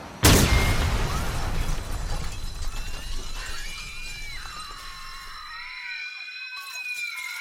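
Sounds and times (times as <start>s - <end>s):
explosion destroying a cafe: 0.2s - 5.6s
crashing debris: 0.2s - 5.7s
glass shattering: 0.2s - 5.8s.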